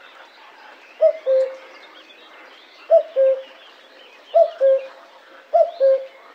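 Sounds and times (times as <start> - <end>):
small birds twittering quietly: 0.0 - 6.3
common cuckoo calling cu-coo: 1.0 - 1.7, 2.9 - 3.6, 4.3 - 6.2.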